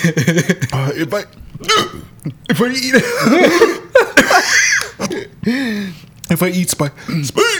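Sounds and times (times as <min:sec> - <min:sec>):
person laughing: 0:00.0 - 0:00.8, 0:02.2 - 0:05.3
speech: 0:00.0 - 0:07.5
hiccups: 0:01.6 - 0:02.1.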